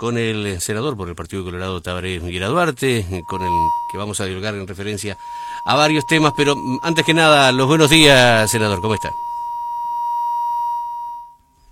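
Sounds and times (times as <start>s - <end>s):
speech: 0.0s - 9.3s
long electronic beep of a dropped phone call: 3.1s - 11.4s.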